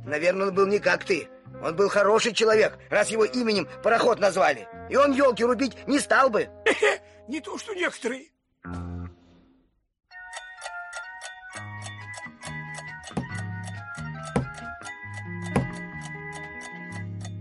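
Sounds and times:
speech: 0:00.1 - 0:08.8
clock striking: 0:10.2 - 0:17.3.

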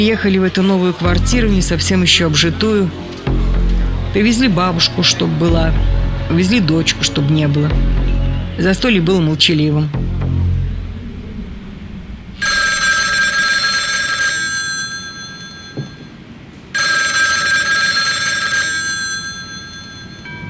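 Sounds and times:
speech: 0:00.0 - 0:03.4, 0:04.1 - 0:08.0, 0:08.6 - 0:10.0
low rumble: 0:00.0 - 0:13.7
telephone bell ringing: 0:12.4 - 0:20.4.

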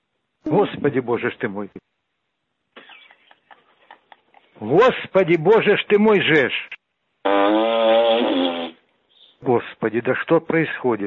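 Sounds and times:
speech: 0:00.5 - 0:02.0, 0:04.6 - 0:08.6, 0:09.4 - 0:11.0
loud drawn-out buzzy fart: 0:07.2 - 0:08.8.

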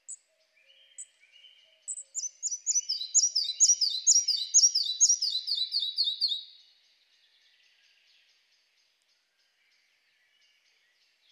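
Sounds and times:
Red-breasted flycatcher Ficedula parva song: 0:01.8 - 0:06.4.

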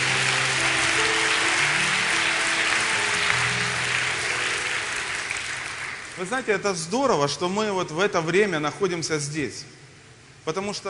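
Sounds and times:
crowd clapping: 0:00.0 - 0:06.5
speech: 0:06.2 - 0:09.8, 0:10.4 - 0:10.8.

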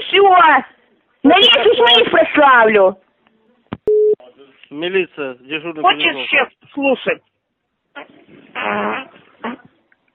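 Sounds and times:
speech: 0:00.1 - 0:03.0, 0:04.7 - 0:07.3, 0:08.0 - 0:09.7
farting: 0:08.0 - 0:09.8.

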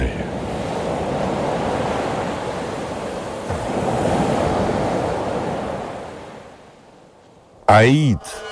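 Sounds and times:
calm sea waves gently lapping shore: 0:00.0 - 0:07.0
speech: 0:07.7 - 0:08.4.

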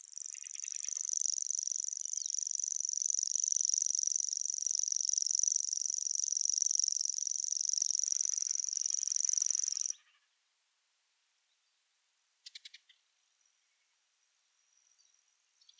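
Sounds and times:
common grasshopper warbler rapid ticking notes: 0:00.0 - 0:09.9
common grasshopper warbler reeling trill: 0:00.0 - 0:10.1.

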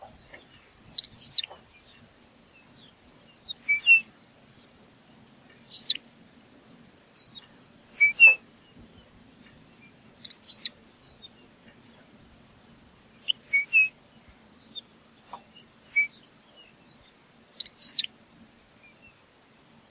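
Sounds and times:
Lapland longspur Calcarius lapponicus chirping and whistling: 0:00.0 - 0:04.8, 0:05.6 - 0:06.0, 0:07.2 - 0:12.2, 0:13.0 - 0:18.2.

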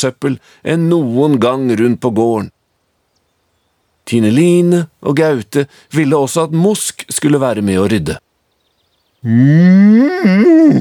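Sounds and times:
speech: 0:00.0 - 0:02.6, 0:04.1 - 0:08.3, 0:09.2 - 0:10.7
cow mooing on a farm: 0:09.2 - 0:10.7.

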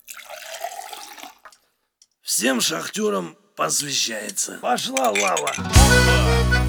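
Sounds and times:
liquid pouring into a glass: 0:00.0 - 0:01.6
speech: 0:02.4 - 0:06.5.

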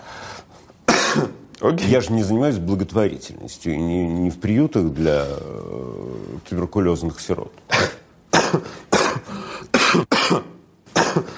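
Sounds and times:
harsh loud coughs: 0:00.9 - 0:01.4, 0:07.7 - 0:11.3
speech: 0:01.2 - 0:08.8.

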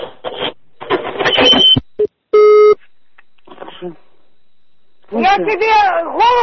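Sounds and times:
telephone busy tone after hang-up: 0:01.3 - 0:05.8
speech: 0:01.4 - 0:01.7, 0:05.4 - 0:06.4.

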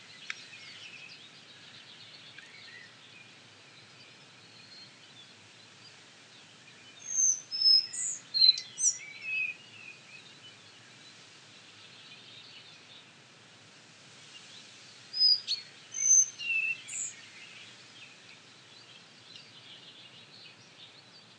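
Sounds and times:
background hiss: 0:00.0 - 0:21.3
Collared flycatcher Ficedula albicollis whistled song: 0:15.2 - 0:17.2.

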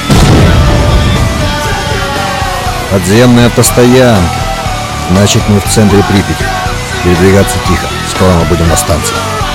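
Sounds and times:
grenade explosion in a video game: 0:00.1 - 0:02.8
speech: 0:02.9 - 0:04.4, 0:05.1 - 0:09.4.

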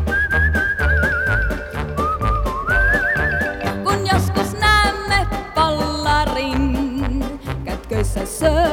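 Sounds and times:
person whistling a wavering bending melody: 0:00.0 - 0:05.1
loud rhythmic musical backing with steady beats: 0:00.6 - 0:08.4.

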